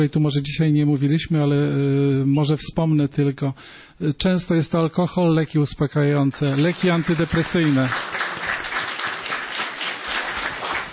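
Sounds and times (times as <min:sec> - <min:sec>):
speech: 0:00.0 - 0:08.4
audience applause: 0:06.6 - 0:10.9.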